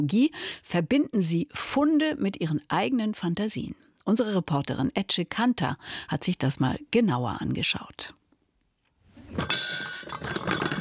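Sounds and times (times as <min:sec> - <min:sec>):
speech: 0:00.0 - 0:08.2, 0:09.4 - 0:10.6
porcelain dishes set down on cardboard shelf: 0:09.3 - 0:10.8.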